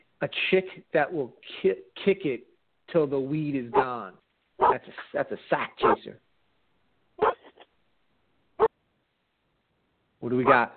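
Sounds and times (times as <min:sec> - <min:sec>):
speech: 0:00.2 - 0:06.2, 0:10.2 - 0:10.7
dog barking and yipping: 0:04.6 - 0:04.8, 0:05.8 - 0:06.1, 0:07.2 - 0:07.6.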